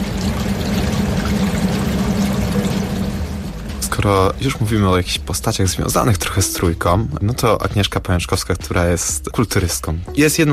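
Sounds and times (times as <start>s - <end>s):
river water gushing from a pump-driven hose into a gallery: 0.0s - 5.4s
speech: 4.0s - 10.5s.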